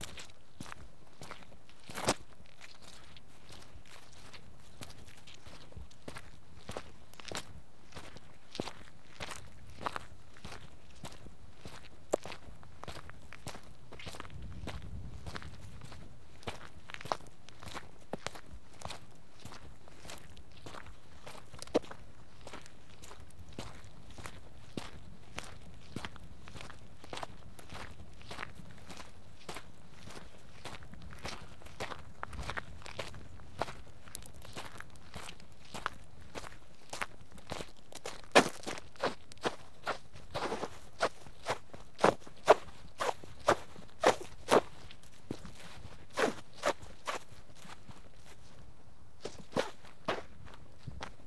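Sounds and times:
footsteps on wet mud, grass and grit: 0.0s - 51.2s.

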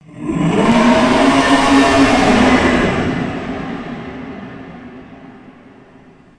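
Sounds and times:
beast roaring: 0.0s - 6.2s.

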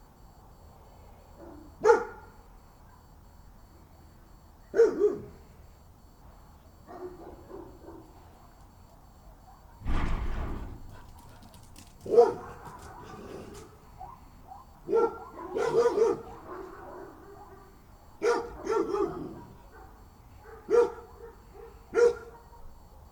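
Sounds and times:
dog barking at night: 1.4s - 3.2s, 4.7s - 5.4s, 6.8s - 8.2s, 9.0s - 9.8s, 10.8s - 23.0s
low thump: 9.8s - 11.4s.

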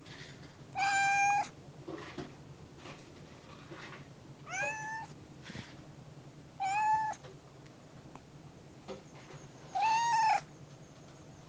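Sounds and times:
steady low background noise: 0.0s - 11.4s
kitten on a wall meowing: 0.8s - 1.5s, 4.5s - 5.1s, 6.6s - 7.2s, 9.7s - 10.5s.

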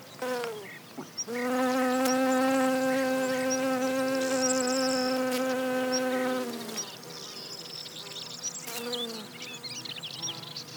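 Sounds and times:
honey bee buzzing at Genista broom plants: 1.3s - 7.1s, 8.4s - 10.7s.

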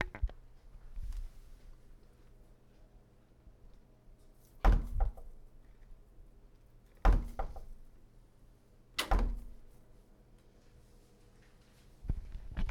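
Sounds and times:
door hitting wall: 4.6s - 5.3s, 7.0s - 7.8s, 9.0s - 9.6s.

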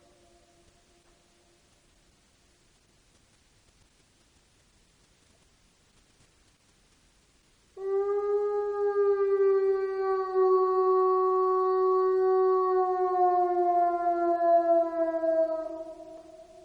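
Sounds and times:
solitary wolf howling at Cooper Creek at night: 7.8s - 16.6s.

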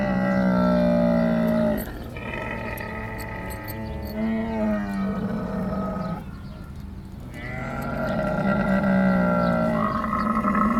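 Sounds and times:
camel at a camel farm in Bahrain groaning and bellowing: 0.0s - 10.7s.

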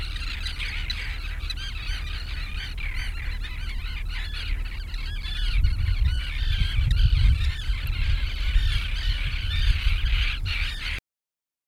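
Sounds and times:
steady low rumble: 0.0s - 10.8s
flock of gulls squawking near the sea: 0.0s - 11.0s.

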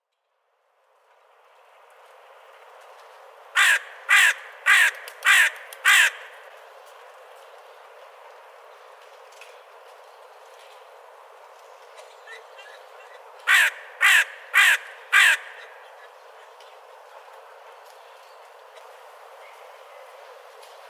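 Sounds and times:
crow cawing outside a window: 3.6s - 6.4s, 13.5s - 15.8s.

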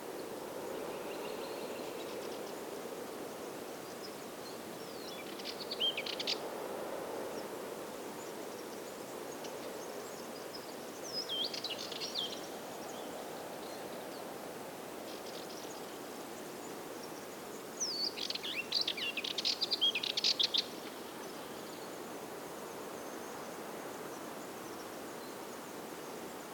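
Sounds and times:
wind in a forest: 0.0s - 26.5s.

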